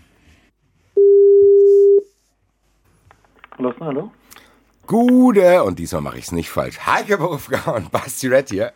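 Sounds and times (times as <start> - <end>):
telephone ringback tone: 1.0 - 2.1
speech: 3.6 - 4.3, 4.9 - 8.7.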